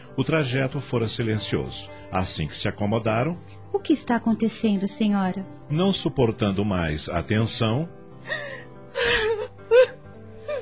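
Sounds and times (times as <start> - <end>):
speech: 0.2 - 8.6
woman sobbing on the steps of an old abandoned townhouse: 8.2 - 10.6.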